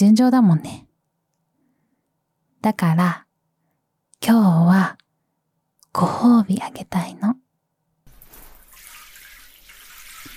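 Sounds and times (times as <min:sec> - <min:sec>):
speech: 0:00.0 - 0:00.8, 0:02.6 - 0:03.2, 0:04.2 - 0:05.0, 0:06.0 - 0:07.4
shower water running: 0:08.1 - 0:10.3.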